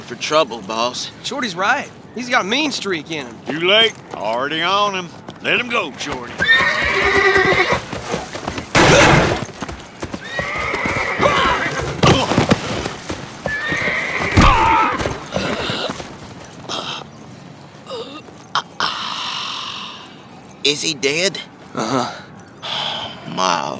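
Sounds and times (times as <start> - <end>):
speech: 0.1 - 7.8, 20.7 - 22.2
horse hooves clopping: 0.1 - 23.0
horse whinnying and snorting: 6.3 - 8.2, 10.1 - 12.6, 13.4 - 16.0
sharp knocks and scuffles: 8.7 - 9.5.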